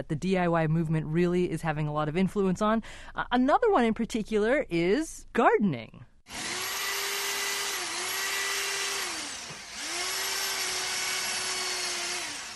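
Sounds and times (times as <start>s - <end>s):
speech: 0.0s - 6.6s
power drill drilling an aluminum plate into a loft wall: 6.3s - 12.5s.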